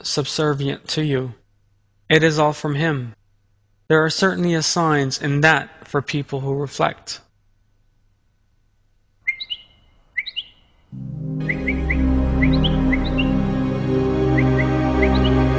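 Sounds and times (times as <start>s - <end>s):
speech: 0.0s - 1.4s, 2.1s - 3.2s, 3.9s - 7.3s, 10.9s - 11.7s
bird chirps, tweets and trills: 9.2s - 15.4s.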